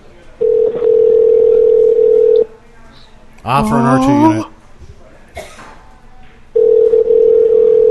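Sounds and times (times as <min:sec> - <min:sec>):
phone line ringback tone: 0:00.4 - 0:02.4, 0:06.6 - 0:07.9
speech: 0:03.4 - 0:04.5.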